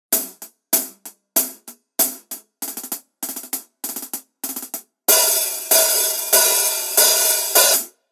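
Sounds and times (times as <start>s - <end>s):
heavy 14-inch custom hi-hat cymbal: 0.2s - 8.0s.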